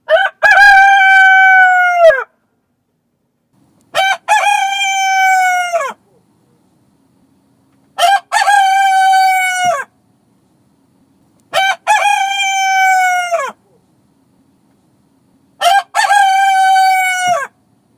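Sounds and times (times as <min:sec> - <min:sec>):
rooster crowing: 0:00.0 - 0:02.4, 0:03.9 - 0:06.0, 0:08.0 - 0:09.9, 0:11.5 - 0:13.6, 0:15.6 - 0:17.6.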